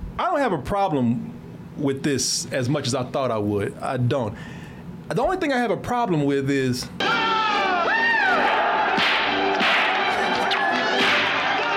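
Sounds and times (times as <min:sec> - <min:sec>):
speech: 0:00.4 - 0:07.2
crowd commotion: 0:07.0 - 0:11.7
people shouting: 0:07.0 - 0:11.7
whip cracks in a film fight: 0:09.0 - 0:11.4.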